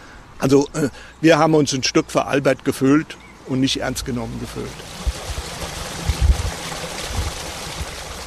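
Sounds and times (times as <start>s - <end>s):
speech: 0.4s - 5.0s
mill stream water rushing and burbling: 4.3s - 8.2s.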